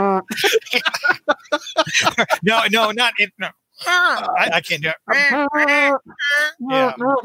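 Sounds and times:
speech: 0.2s - 7.2s
laughter: 0.3s - 3.2s
duck horn blown, giving nasal honking quacks: 3.8s - 7.2s.

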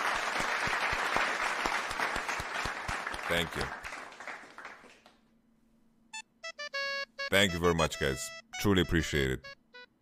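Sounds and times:
group of people applauding: 0.0s - 5.3s
speech: 3.3s - 3.8s, 7.3s - 9.6s.

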